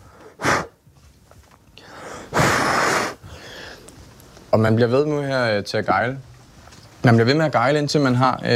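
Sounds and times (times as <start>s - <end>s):
person blowing out breath: 0.0s - 0.8s, 1.8s - 3.9s
speech: 4.5s - 6.3s, 7.0s - 8.5s.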